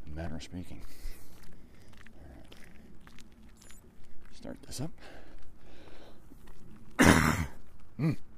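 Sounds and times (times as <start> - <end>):
speech: 0.4 - 1.2, 4.4 - 5.2, 8.0 - 8.3
single harsh cough: 7.0 - 8.2
voiced throat-clearing grunt: 7.0 - 8.3.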